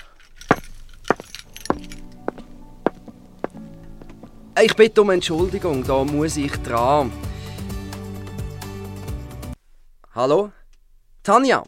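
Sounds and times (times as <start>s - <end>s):
car keys clinking: 0.0s - 3.4s
speech: 4.6s - 7.3s, 10.2s - 10.6s, 11.2s - 11.6s.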